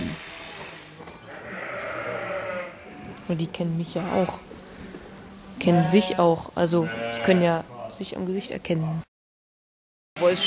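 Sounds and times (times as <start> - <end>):
sheep bleating in a pen after shearing: 1.3 - 3.2, 5.6 - 7.6
speech: 3.3 - 4.5, 5.6 - 9.1, 10.2 - 10.4.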